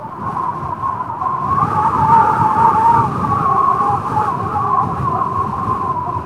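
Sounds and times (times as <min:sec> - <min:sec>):
wind whistling: 0:00.0 - 0:06.2.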